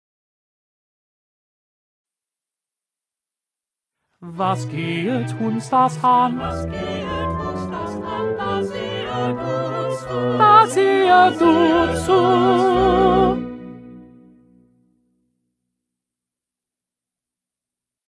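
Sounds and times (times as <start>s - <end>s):
second tenor voice singing: 4.2s - 13.7s.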